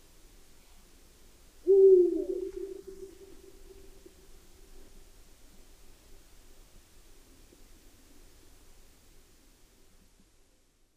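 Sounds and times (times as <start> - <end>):
Eurasian eagle-owl hooting: 1.6 - 4.0.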